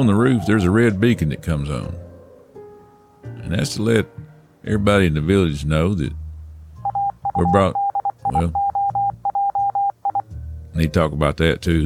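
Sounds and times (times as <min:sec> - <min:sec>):
speech: 0:00.0 - 0:02.0, 0:03.4 - 0:06.2, 0:07.4 - 0:08.6, 0:10.8 - 0:11.8
news wire alert electronic beeps: 0:06.8 - 0:10.2.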